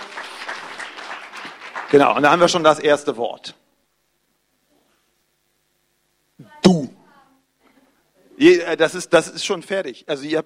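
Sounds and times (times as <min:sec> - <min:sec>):
brief applause from a small group: 0:00.0 - 0:02.7
speech: 0:01.9 - 0:03.6, 0:08.4 - 0:10.4.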